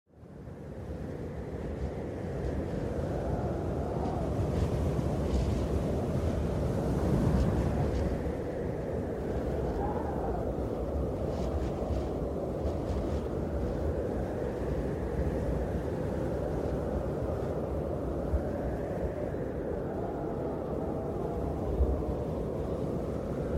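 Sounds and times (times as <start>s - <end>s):
icy snowstorm wind blowing: 0.1s - 23.5s.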